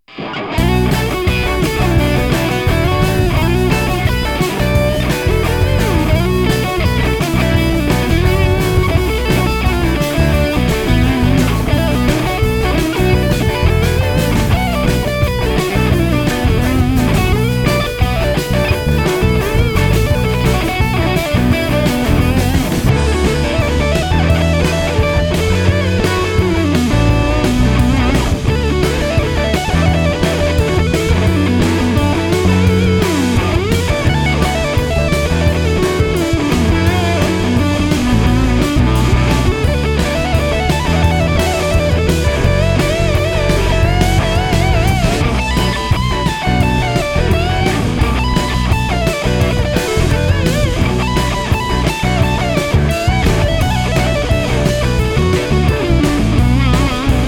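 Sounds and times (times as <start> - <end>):
minor pentatonic melody: 0.2 - 57.2.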